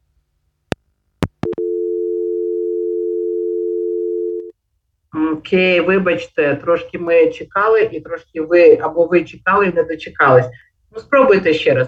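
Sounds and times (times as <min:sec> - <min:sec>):
steady low telephone dial tone while connecting a caller: 0:01.4 - 0:04.5
telephone line clicks while a caller is connected: 0:04.2 - 0:04.5
speech: 0:05.2 - 0:11.8.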